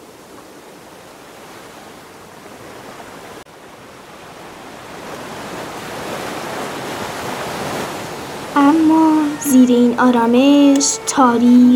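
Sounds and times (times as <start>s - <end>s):
sea waves breaking against rocks: 0.0s - 11.7s
speech: 8.7s - 11.7s.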